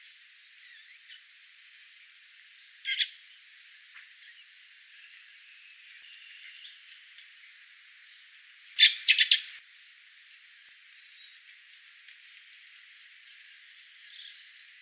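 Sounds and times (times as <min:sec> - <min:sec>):
common blackbird Turdus merula calls: 0:02.9 - 0:03.2, 0:08.8 - 0:09.6.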